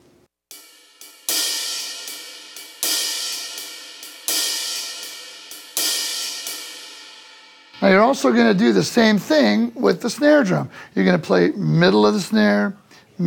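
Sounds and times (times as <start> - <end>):
drum stick tip and shoulder strokes on a ride cymbal in a shuffle: 0.5 - 10.5
speech: 7.9 - 13.2.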